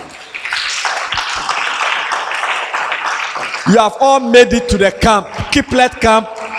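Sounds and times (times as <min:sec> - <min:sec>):
audience clapping: 0:00.0 - 0:04.3, 0:05.0 - 0:06.5
speech: 0:03.7 - 0:06.4.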